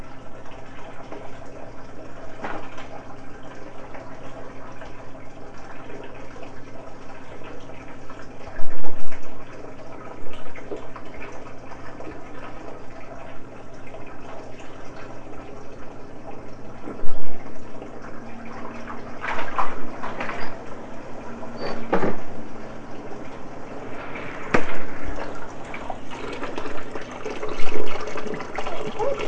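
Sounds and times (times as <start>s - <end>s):
hot water from a running tap filling a bathtub: 0.0s - 29.2s
knocks and splashy bursts of water: 18.6s - 20.8s, 21.8s - 22.6s, 23.8s - 29.2s.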